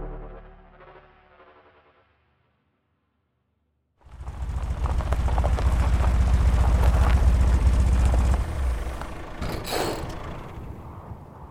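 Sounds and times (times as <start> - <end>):
heavy truck engine sputtering and cutting out from running out of fuel: 4.1 - 11.1
truck grinding and scraping to a halt on a forest path: 4.4 - 10.8.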